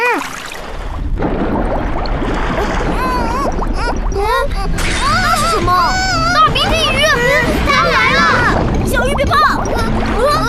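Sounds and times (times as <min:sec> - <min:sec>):
cartoon water splashing and bubbling as characters dive underwater: 0:00.0 - 0:10.4.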